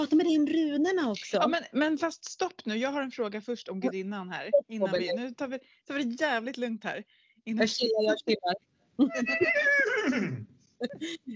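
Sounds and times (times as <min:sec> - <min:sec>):
speech: 0:00.0 - 0:11.3
horse whinnying: 0:09.2 - 0:10.5.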